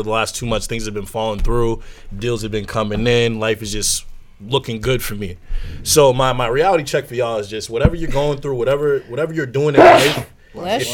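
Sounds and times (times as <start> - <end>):
speech: 0.0 - 10.9
loud sneeze: 9.8 - 10.4.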